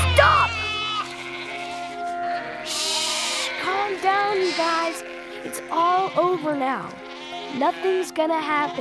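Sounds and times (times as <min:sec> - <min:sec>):
sheep bleating loudly: 0:00.0 - 0:08.7
speech: 0:04.6 - 0:08.7.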